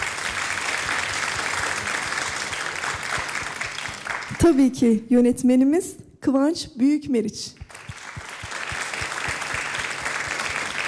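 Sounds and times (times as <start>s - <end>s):
studio audience applause: 0.0s - 4.4s, 7.7s - 10.8s
speech: 4.4s - 7.6s.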